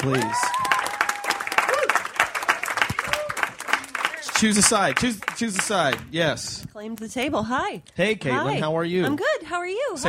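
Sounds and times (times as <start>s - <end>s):
speech: 0.0s - 0.7s, 4.4s - 10.0s
whoops and cheering voices: 0.0s - 2.2s, 2.8s - 4.0s
crowd applauding: 0.0s - 6.1s.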